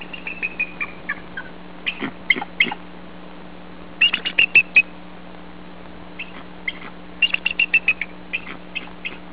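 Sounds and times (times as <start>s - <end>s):
bald eagle calling: 0.0s - 2.8s, 4.0s - 5.0s, 6.2s - 9.3s.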